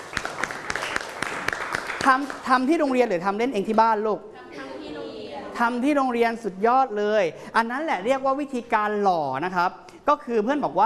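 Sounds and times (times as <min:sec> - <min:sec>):
children clapping for themselves during a lesson: 0:00.0 - 0:02.7
speech: 0:02.0 - 0:04.3, 0:05.6 - 0:10.8.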